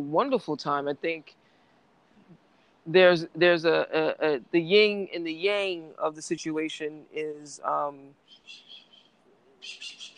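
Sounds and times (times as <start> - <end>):
speech: 0.0 - 1.4, 2.9 - 8.7
low hiss: 0.0 - 10.1
birds chirping outdoors: 8.2 - 10.1.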